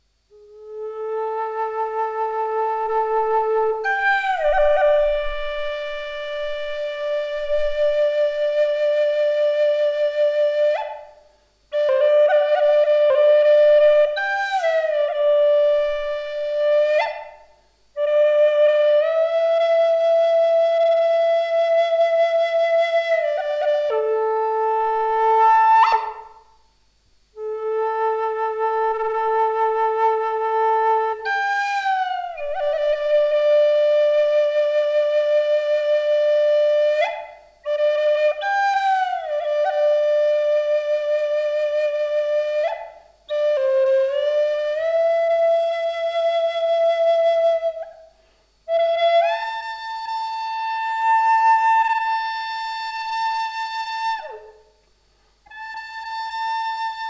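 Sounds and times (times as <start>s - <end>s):
kauri love flute playing in A minor: 0.0s - 26.6s, 27.4s - 54.8s, 55.5s - 57.0s.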